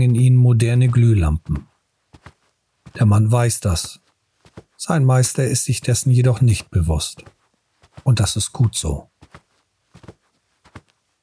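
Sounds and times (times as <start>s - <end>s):
speech: 0.0s - 1.7s, 3.0s - 4.0s, 4.6s - 7.4s, 8.0s - 9.1s
footsteps walking toward a door on a hard floor: 0.8s - 3.1s, 3.8s - 4.8s, 6.5s - 11.0s.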